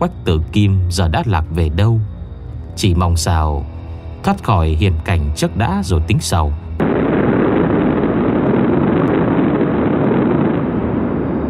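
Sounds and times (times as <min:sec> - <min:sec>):
speech: 0:00.0 - 0:02.1, 0:02.8 - 0:06.6
roaring wind: 0:06.6 - 0:11.4.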